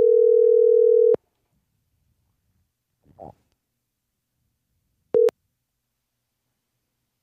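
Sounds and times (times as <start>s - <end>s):
telephone tone of a call going straight to voicemail: 0.0s - 1.2s.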